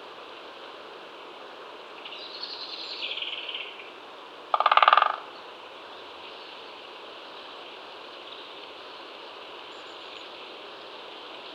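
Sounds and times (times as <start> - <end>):
Great spotted woodpecker drumming: 4.6 - 5.3.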